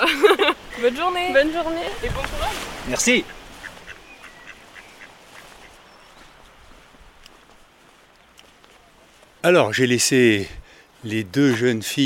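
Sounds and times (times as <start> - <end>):
laughter: 0.0 - 1.0
outdoor noise: 0.0 - 12.0
speech: 0.8 - 3.4, 9.4 - 12.0
duck quacking: 2.9 - 5.8.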